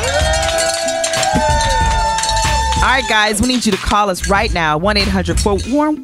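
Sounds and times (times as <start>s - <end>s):
bustling crowd: 0.0s - 3.1s
cowbell-like bells clanging: 0.0s - 4.6s
speech: 3.0s - 6.0s.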